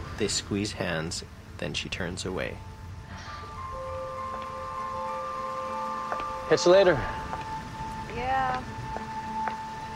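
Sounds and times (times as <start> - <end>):
steady rain falling over a gazebo and a stone path: 0.0 - 9.9
speech: 0.2 - 2.7, 6.5 - 7.3, 8.2 - 8.8
faint sustained tone: 2.2 - 9.9.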